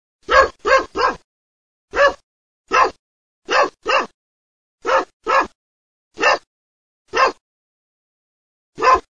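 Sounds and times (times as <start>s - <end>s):
dog barking: 0.2s - 1.3s, 1.9s - 4.2s, 4.8s - 5.6s, 6.2s - 6.5s, 7.1s - 7.4s, 8.8s - 9.1s.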